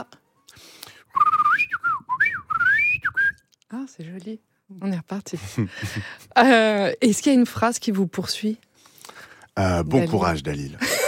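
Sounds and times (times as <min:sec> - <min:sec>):
person whistling a bird-like call: 0:01.1 - 0:03.4
speech: 0:04.0 - 0:08.7, 0:09.6 - 0:10.9.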